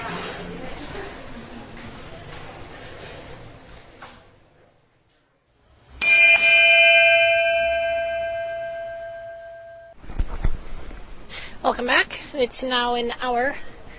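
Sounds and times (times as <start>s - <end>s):
bell strike ringing: 6.0s - 10.0s
speech: 11.8s - 13.7s.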